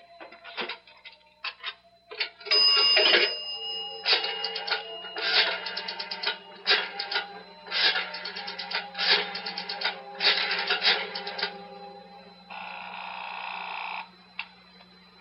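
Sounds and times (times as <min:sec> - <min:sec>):
telephone ringing: 0:00.0 - 0:15.1
steady electronic tone: 0:03.3 - 0:15.1.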